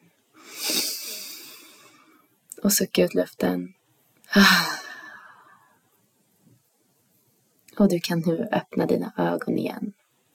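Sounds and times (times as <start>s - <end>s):
deep inhale through the nose during a relaxation breathing exercise: 0.4s - 2.2s
speech: 2.6s - 3.8s, 4.4s - 4.7s, 7.8s - 10.0s.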